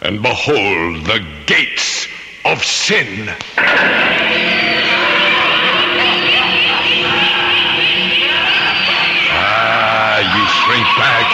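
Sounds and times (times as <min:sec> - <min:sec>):
speech: 0:00.0 - 0:04.6
many high voices shrieking and wailing beyond gates: 0:03.6 - 0:11.3.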